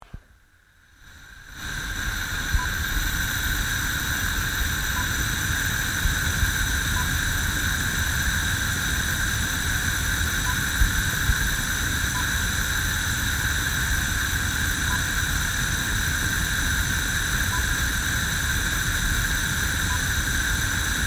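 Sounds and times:
gas hob: 0.8s - 21.0s.

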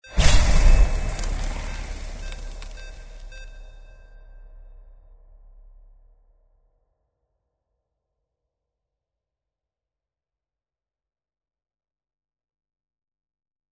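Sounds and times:
sci-fi magic ice start effect: 0.1s - 3.6s.

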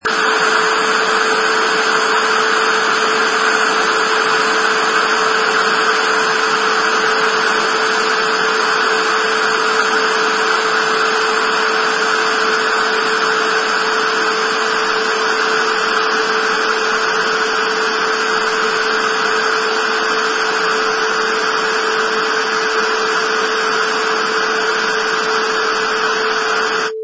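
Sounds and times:
television static: 0.0s - 27.0s.

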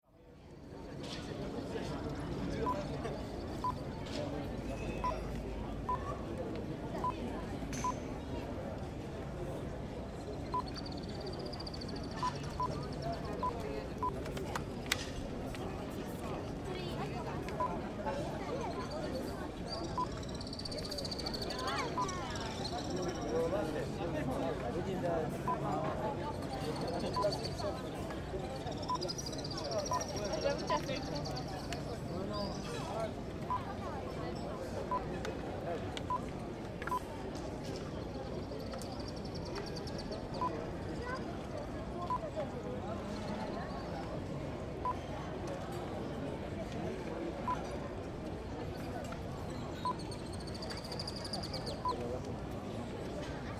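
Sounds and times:
street square ambience in Dubrovnik: 0.0s - 53.5s.

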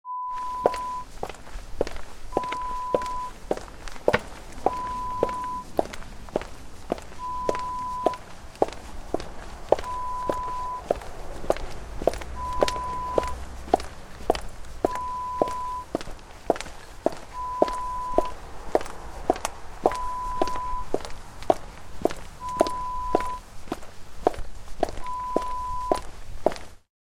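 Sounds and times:
footsteps on pavement: 0.4s - 26.8s.

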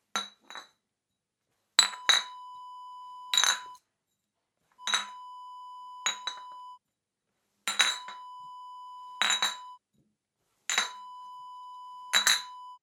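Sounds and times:
glass bottles in a bag: 1.8s - 2.6s, 3.3s - 3.8s, 4.8s - 6.8s, 7.7s - 9.8s, 10.7s - 11.3s, 12.0s - 12.8s.

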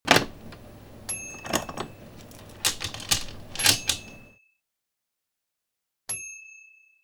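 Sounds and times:
locking door with chain and deadbolt: 0.0s - 4.3s.

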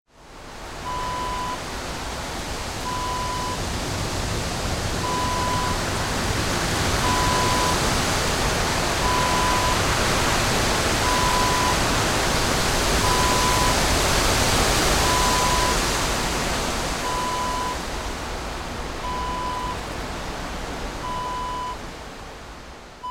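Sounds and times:
wind breeze: 0.2s - 23.0s.

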